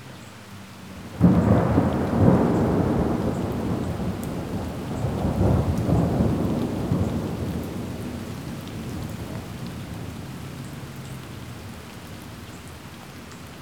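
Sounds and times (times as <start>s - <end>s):
close lo-fi thunder: 1.1s - 10.8s.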